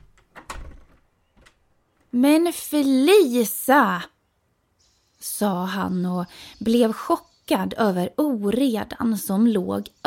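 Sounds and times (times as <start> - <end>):
door latch clack: 0.0 - 1.6
door rattling sweep: 0.0 - 2.2
speech: 2.1 - 4.1, 5.2 - 10.0.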